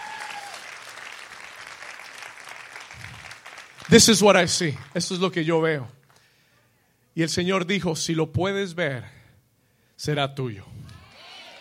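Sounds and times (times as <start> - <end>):
audience applauding loudly: 0.0 - 5.2
speech: 3.9 - 6.0, 7.2 - 9.2, 10.0 - 10.8.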